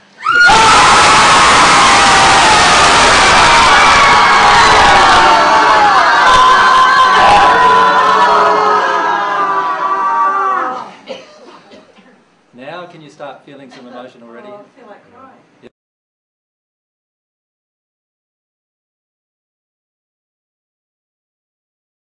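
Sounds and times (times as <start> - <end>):
group of people screaming and yelling in anger: 0.2 - 10.9.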